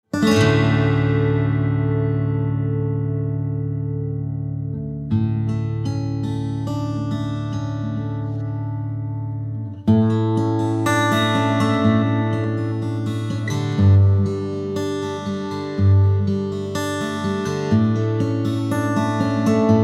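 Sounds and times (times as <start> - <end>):
acoustic music: 0.0 - 19.8.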